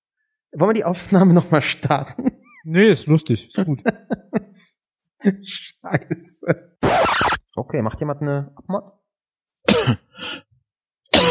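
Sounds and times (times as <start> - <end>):
speech: 0.5 - 9.0, 9.8 - 10.3
man coughing: 9.6 - 10.2.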